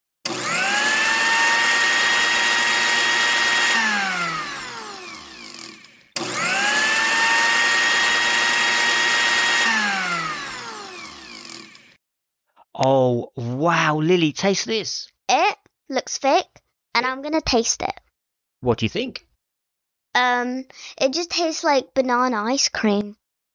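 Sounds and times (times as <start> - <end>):
blender blending strawberries, banana, yogurt and milk: 0.2 - 12.0
speech: 13.6 - 15.2, 15.9 - 18.0, 18.6 - 19.3, 20.2 - 23.2.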